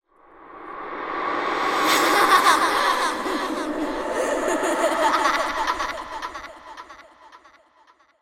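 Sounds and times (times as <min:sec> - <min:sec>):
horror evil child laugh reversed with reverb: 0:01.8 - 0:08.1.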